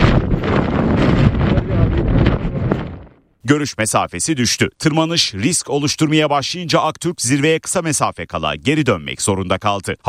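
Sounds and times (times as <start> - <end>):
strong wind and storm on a mountain at 4,900 metres during a climb: 0.0 - 3.3
speech: 3.5 - 10.0.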